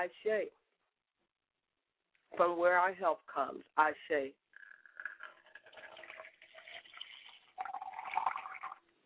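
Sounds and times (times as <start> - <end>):
speech: 0.0 - 0.6, 2.3 - 4.4
liquid poured out as a libation: 4.6 - 8.9.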